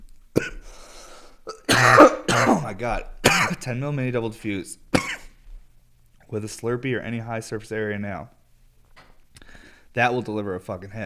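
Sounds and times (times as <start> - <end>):
person coughing into microphone: 0.4 - 0.6, 1.5 - 3.6, 4.9 - 5.4
harsh burst of breath: 0.6 - 1.5
speech: 2.8 - 4.9, 6.3 - 8.4, 10.0 - 11.0.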